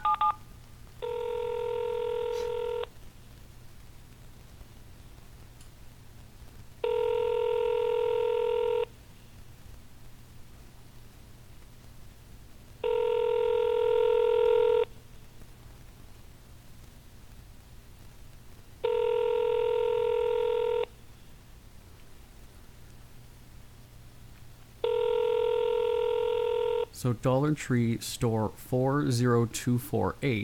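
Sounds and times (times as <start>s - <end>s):
telephone ringback tones of an unanswered call to a store: 0.0s - 0.4s, 1.0s - 2.9s, 6.8s - 8.9s, 12.8s - 14.9s, 18.8s - 20.9s, 24.8s - 26.9s
faint steady hiss: 0.0s - 30.4s
speech: 27.0s - 30.4s.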